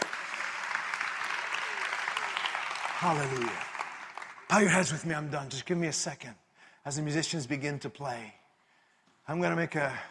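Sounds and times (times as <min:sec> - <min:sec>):
church congregation applause: 0:00.0 - 0:05.6
speech: 0:03.0 - 0:03.7, 0:04.5 - 0:08.4, 0:09.3 - 0:10.1.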